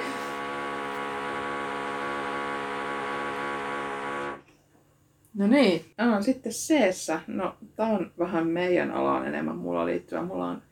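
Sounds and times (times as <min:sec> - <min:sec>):
power drill running: 0:00.0 - 0:04.4
speech: 0:05.4 - 0:10.7.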